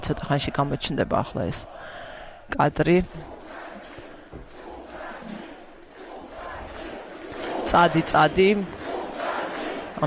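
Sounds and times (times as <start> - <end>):
speech: 0.1 - 3.4, 7.7 - 8.8
protesters chanting a slogan at a demonstration in Belarus: 2.8 - 10.0.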